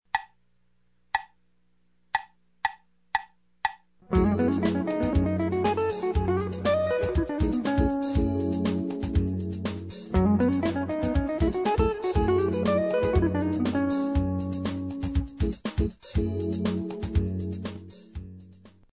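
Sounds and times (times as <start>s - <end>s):
minor jazz riff: 4.0s - 18.9s.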